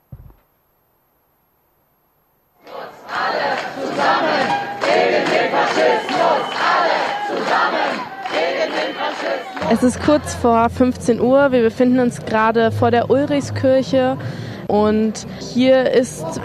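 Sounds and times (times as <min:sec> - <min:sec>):
brief thump: 0:00.0 - 0:00.5
crowd at a counter-demonstration outside a church shouting and chanting: 0:02.6 - 0:14.2
speech: 0:09.2 - 0:16.4.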